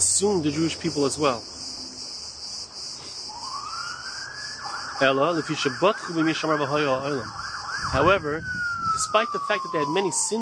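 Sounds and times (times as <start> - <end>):
speech: 0.0 - 1.6, 5.0 - 10.3
traffic noise from a nearby road: 0.0 - 10.3
siren wailing on a nearby road: 3.3 - 10.3.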